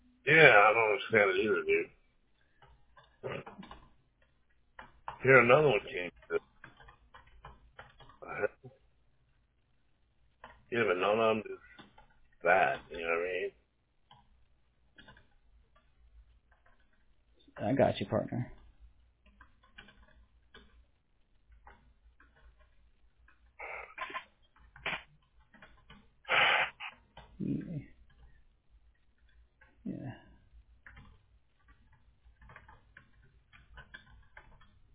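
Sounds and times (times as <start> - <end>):
speech: 0.3 - 2.0, 5.2 - 6.5, 8.4 - 8.6, 10.7 - 11.6, 12.4 - 13.6, 17.6 - 18.6, 27.4 - 27.9
typing on a computer keyboard: 1.9 - 10.7, 11.5 - 13.0, 14.0 - 17.6, 18.5 - 26.3, 26.9 - 34.9.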